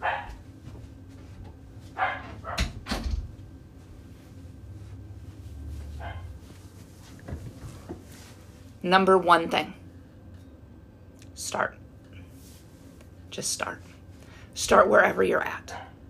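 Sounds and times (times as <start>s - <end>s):
dog barking: 0.0s - 0.4s, 2.0s - 2.7s, 6.0s - 6.3s
speech: 8.8s - 9.8s, 13.4s - 13.9s, 14.6s - 15.8s.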